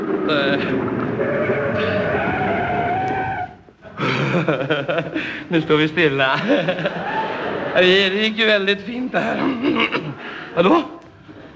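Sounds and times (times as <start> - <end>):
car tires squealing as a car brakes hard on a town street: 0.0 - 3.7
speech: 0.3 - 1.9, 4.4 - 11.0
laughter: 3.8 - 11.5.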